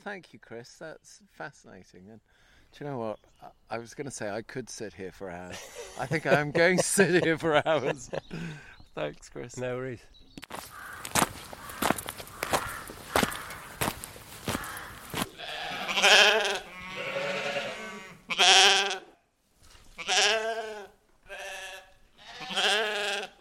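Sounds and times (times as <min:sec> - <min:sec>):
speech: 0:00.0 - 0:10.7
laughter: 0:05.4 - 0:08.7
shuffling footsteps: 0:10.4 - 0:16.1
sheep bleating in a barn on a farm: 0:14.5 - 0:19.2, 0:20.0 - 0:23.4.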